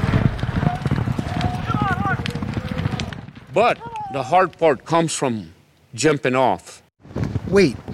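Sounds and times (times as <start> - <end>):
many horses galloping in an Indian Relay race on a half-mile race track: 0.0 - 4.9
speech: 3.6 - 6.7, 7.5 - 7.8.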